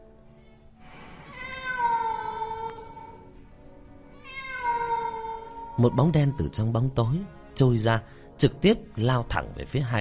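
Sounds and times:
cat meowing mournfully in the night: 0:01.2 - 0:03.4, 0:04.0 - 0:06.6
speech: 0:05.8 - 0:09.9.

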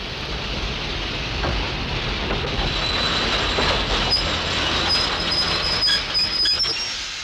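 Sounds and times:
train in London passing beneath a window, rolling rumble: 0:00.0 - 0:07.2
train wheels clattering on rails: 0:01.2 - 0:06.9
high thin train wheel squeal: 0:02.6 - 0:07.1.

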